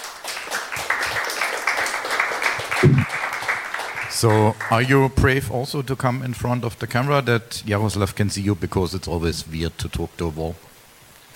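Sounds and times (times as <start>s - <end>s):
audience applauding a woman: 0.0s - 5.4s
speech: 2.8s - 3.2s, 4.2s - 10.7s.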